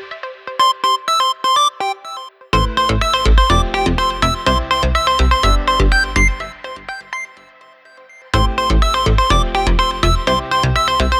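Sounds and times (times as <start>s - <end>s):
Lenovo Gaming ringtones: 0.6s - 11.1s.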